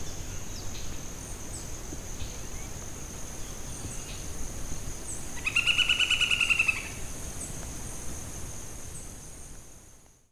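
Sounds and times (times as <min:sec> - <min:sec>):
Chondrohierax uncinatus calling: 0:05.4 - 0:07.1.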